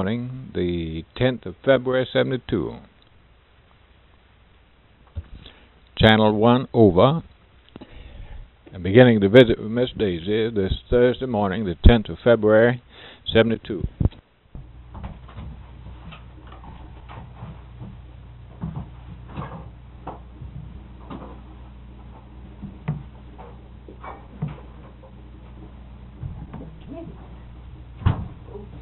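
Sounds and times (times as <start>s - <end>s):
speech: 0.0s - 2.9s, 6.0s - 7.3s, 8.7s - 14.2s
low steady hum: 0.0s - 28.8s
sharp loud door thud: 28.0s - 28.5s.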